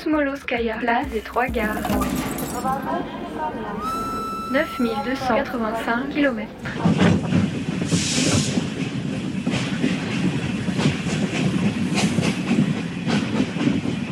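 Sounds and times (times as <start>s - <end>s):
speech: 0.0s - 8.0s
clickety-clack of Trans-Siberian train wheels on rails: 0.3s - 14.1s
Trans-Siberian train departing Yaroslavsky station in Moscow: 0.8s - 14.1s
hiss of Trans-Siberian train departing: 3.7s - 12.5s.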